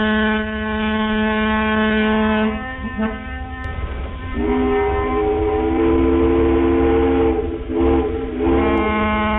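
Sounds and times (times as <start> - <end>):
ferry boat whistle blasts: 0.0 - 9.3.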